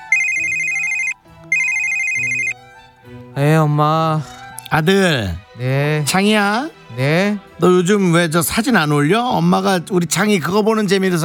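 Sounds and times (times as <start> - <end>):
phone ringtone for an incoming call: 0.0 - 2.6
speech: 3.4 - 11.2.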